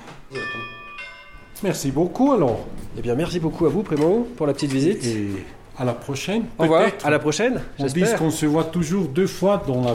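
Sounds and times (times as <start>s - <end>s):
mobile phone ringtone imitating a railway station bell: 0.3s - 1.6s
speech: 1.6s - 9.9s.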